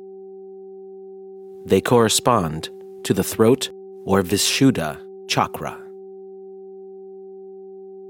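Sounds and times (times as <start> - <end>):
768 hertz solfeggio electronic sine tone: 0.0 - 1.6, 3.7 - 4.1, 5.0 - 8.0
speech: 1.6 - 5.8.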